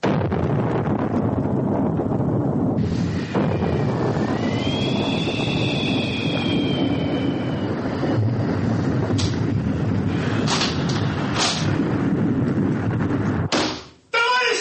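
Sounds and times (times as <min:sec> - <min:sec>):
wind roaring in a violent storm at sea: 0:00.0 - 0:14.5
shrill howling whistle of wind: 0:03.1 - 0:08.6.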